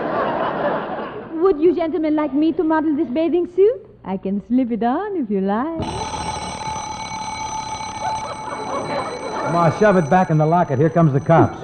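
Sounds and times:
laughter: 0.0s - 2.7s, 8.0s - 11.6s
speech: 1.5s - 6.1s, 9.5s - 11.6s
alarm clock ringing loudly: 5.8s - 11.6s.

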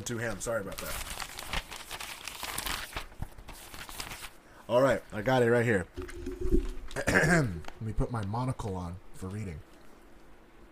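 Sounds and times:
speech: 0.0s - 1.2s, 4.7s - 9.7s
paper with written notes being picked up and crinkled: 0.1s - 4.4s.

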